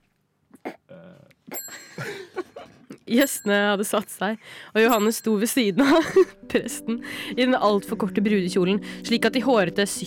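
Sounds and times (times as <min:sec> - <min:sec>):
small bell ringing by an altar: 0:01.5 - 0:02.2, 0:03.1 - 0:04.2, 0:04.8 - 0:06.4
speech: 0:03.1 - 0:10.0.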